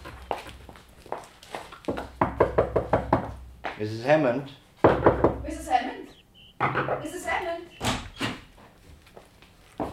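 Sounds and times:
knocking on a house door: 1.9s - 3.4s, 4.8s - 5.5s
speech: 3.8s - 4.6s, 6.8s - 7.8s.

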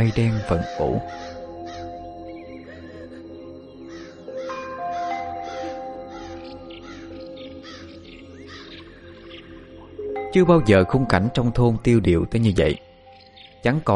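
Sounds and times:
speech: 0.0s - 1.4s, 10.3s - 12.9s, 13.6s - 13.9s
flock of crows cawing overhead: 1.0s - 10.2s.

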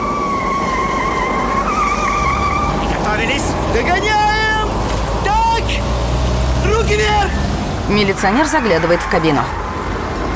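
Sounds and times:
police car siren wailing while chasing a driverless ambulance: 0.0s - 5.9s, 6.6s - 10.3s
dense rush of engine and road noise: 0.0s - 10.3s
speech: 6.9s - 9.6s.

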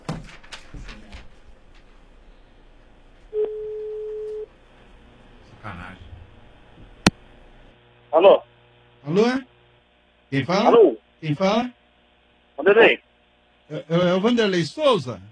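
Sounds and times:
telephone ringback tone on a call waiting to connect: 3.3s - 4.5s
speech: 8.2s - 8.4s, 9.1s - 9.5s, 10.3s - 11.8s, 12.6s - 13.1s, 13.7s - 15.3s.

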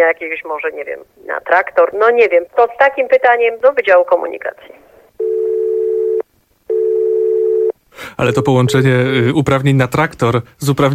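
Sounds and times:
speech: 0.0s - 4.8s, 8.0s - 10.9s
telephone call ringback tone: 5.2s - 7.7s.

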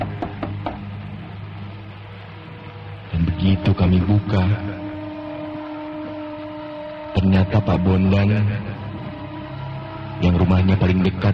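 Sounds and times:
soft dull knocking on a door: 0.0s - 0.9s
speech: 3.4s - 4.8s, 7.1s - 9.2s, 10.2s - 11.3s.

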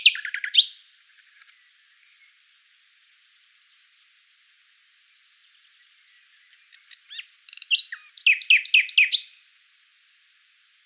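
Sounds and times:
Common nightingale singing: 0.0s - 2.4s, 5.2s - 9.5s.

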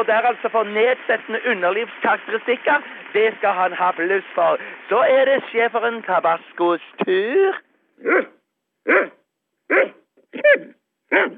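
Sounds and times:
speech: 0.0s - 11.3s
small yappy dog barking: 8.0s - 11.3s.

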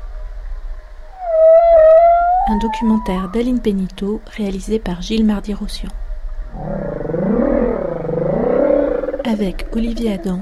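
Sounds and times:
humpback whale sustained tonal moan: 1.1s - 3.4s, 6.5s - 10.4s
speech: 2.5s - 6.8s, 9.3s - 10.4s.

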